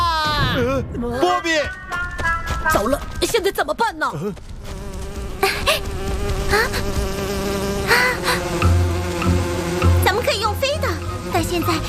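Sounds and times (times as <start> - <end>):
speech: 0.5 - 4.6, 5.7 - 7.2, 11.4 - 11.8
bee buzzing: 4.2 - 11.8.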